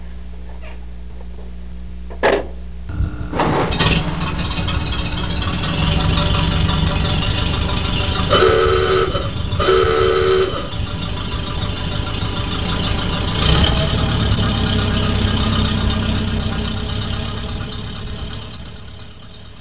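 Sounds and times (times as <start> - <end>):
Model A car engine starting: 2.9 - 19.5
Model A ahooga car horn: 4.8 - 16.7.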